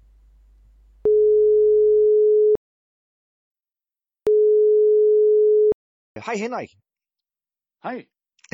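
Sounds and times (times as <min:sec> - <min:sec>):
telephone ringing tone before a call connects: 0:01.1 - 0:02.6, 0:04.3 - 0:05.8
speech: 0:06.3 - 0:06.9, 0:07.8 - 0:08.5.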